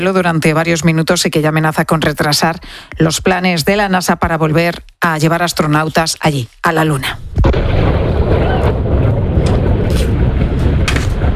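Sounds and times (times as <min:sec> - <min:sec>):
speech: 0:00.0 - 0:07.8
wind buffeting the microphone: 0:07.2 - 0:11.3
rocket explosion during engine test: 0:07.3 - 0:11.3.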